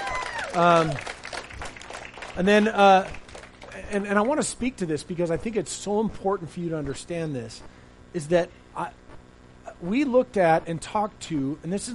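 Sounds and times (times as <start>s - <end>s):
people whooping and cheering: 0.0s - 2.4s
audience clapping: 0.0s - 4.4s
speech: 0.5s - 1.1s, 2.4s - 3.2s, 3.8s - 9.0s, 9.8s - 11.9s.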